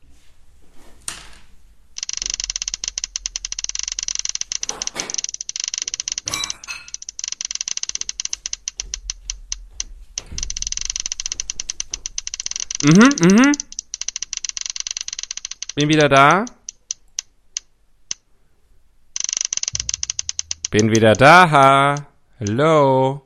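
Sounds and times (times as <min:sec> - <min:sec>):
prize wheel spinning and clicking: 0:02.0 - 0:09.6, 0:10.2 - 0:17.3, 0:19.2 - 0:22.1
speech: 0:12.8 - 0:13.6, 0:15.8 - 0:16.6, 0:20.7 - 0:23.2.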